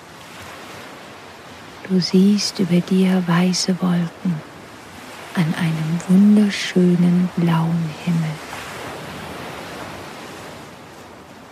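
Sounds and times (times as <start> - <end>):
ocean surf: 0.0 - 11.5
speech: 1.9 - 4.5, 5.4 - 8.4.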